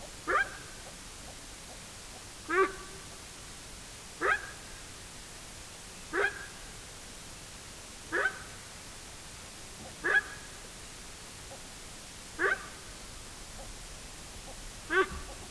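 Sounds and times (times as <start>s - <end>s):
male Connochaetes gnou calling: 2.5s - 3.0s, 4.2s - 4.6s, 6.1s - 6.6s, 8.1s - 8.5s, 9.9s - 10.6s, 12.4s - 12.8s, 14.5s - 15.4s.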